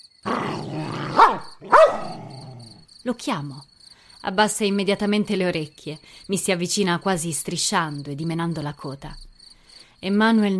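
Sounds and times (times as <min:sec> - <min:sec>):
dog growling: 0:00.3 - 0:02.8
speech: 0:03.0 - 0:09.3, 0:10.0 - 0:10.5.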